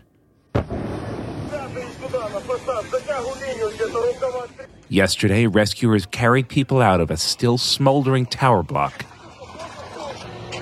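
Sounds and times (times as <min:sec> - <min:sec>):
loud explosion: 0:00.5 - 0:04.0
people's voices: 0:01.4 - 0:10.5
speech: 0:01.6 - 0:09.1.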